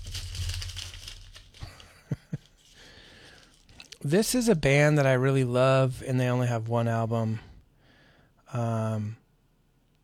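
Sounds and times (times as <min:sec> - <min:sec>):
low hum: 0:00.0 - 0:01.8
paper page turning: 0:00.0 - 0:04.1
speech: 0:04.0 - 0:07.5, 0:08.5 - 0:09.2.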